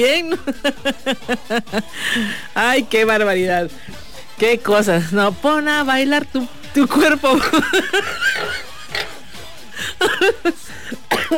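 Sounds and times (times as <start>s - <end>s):
speech: 0.0s - 9.0s, 10.0s - 11.3s
laughter: 0.2s - 2.4s, 7.1s - 11.3s
person having a coughing fit: 10.0s - 11.3s.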